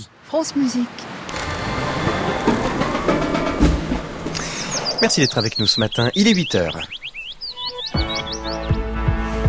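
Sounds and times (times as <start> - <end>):
speech: 0.0 - 1.4, 5.0 - 7.0
birds tweeting in a radio jingle: 1.9 - 9.3.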